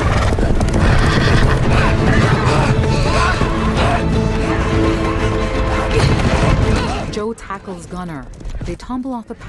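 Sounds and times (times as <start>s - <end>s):
horses neighing and whinnying: 0.0s - 7.1s
herd of horses galloping past: 0.0s - 9.2s
speech: 7.7s - 9.4s.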